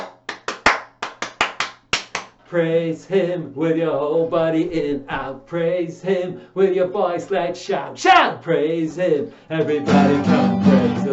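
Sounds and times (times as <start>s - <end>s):
church congregation clapping during a praise song: 0.0s - 2.4s
speech: 2.5s - 11.1s.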